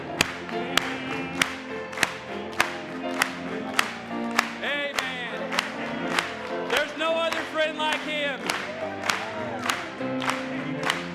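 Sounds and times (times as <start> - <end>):
congregation clapping hands in unison: 0.0 - 11.1
congregation singing: 0.0 - 11.1
instrumental music: 0.0 - 11.1.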